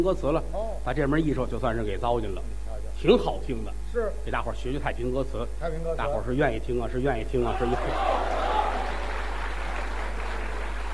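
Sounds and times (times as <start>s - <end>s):
speech: 0.0s - 8.4s
audience applause after a performance of traditional ballad singing: 7.6s - 10.9s.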